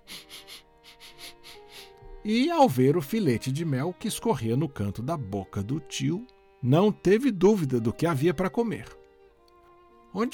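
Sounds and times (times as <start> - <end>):
boy sniffing as he comes in through the door: 0.0 - 2.0
speech: 2.2 - 9.0, 10.1 - 10.3.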